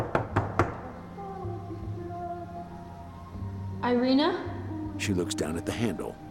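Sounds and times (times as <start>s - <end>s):
fist knocking on an apartment door in a hallway: 0.0s - 0.8s
speech: 3.9s - 6.2s.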